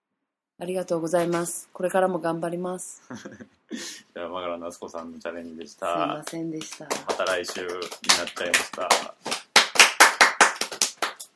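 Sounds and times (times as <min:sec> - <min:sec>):
speech: 0:00.6 - 0:09.4
hand clapping: 0:05.6 - 0:11.3.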